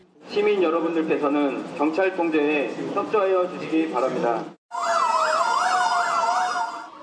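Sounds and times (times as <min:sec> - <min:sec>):
speech: 0:00.4 - 0:04.6
emergency vehicle siren wailing: 0:04.7 - 0:07.0.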